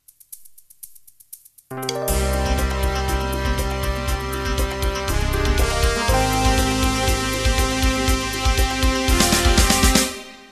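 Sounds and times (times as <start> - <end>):
disco jazz intro music: 0.1 - 10.4.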